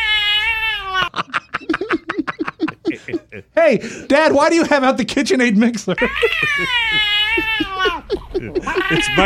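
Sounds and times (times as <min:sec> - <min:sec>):
cat meowing with short chirping bursts: 0:00.0 - 0:01.1, 0:06.0 - 0:08.1, 0:08.7 - 0:09.2
laughter: 0:01.0 - 0:04.7, 0:05.8 - 0:09.2
speech: 0:03.4 - 0:07.7, 0:08.4 - 0:09.2.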